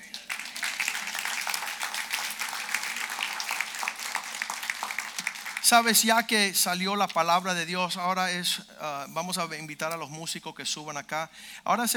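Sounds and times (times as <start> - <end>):
audience applauding together: 0.0 - 6.0
speech: 5.7 - 11.9.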